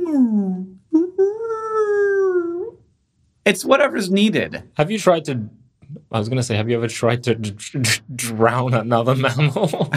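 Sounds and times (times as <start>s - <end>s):
person vocally imitating a high-pitched whale call: 0.0s - 2.8s
speech: 3.4s - 9.9s
laughter: 9.2s - 9.9s.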